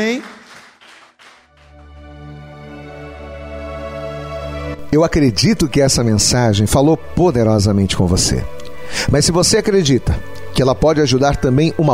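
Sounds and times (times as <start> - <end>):
speech: 0.0 - 0.4, 4.9 - 11.9
crowd applauding: 0.0 - 2.1
sustained organ-like chords: 1.5 - 9.1.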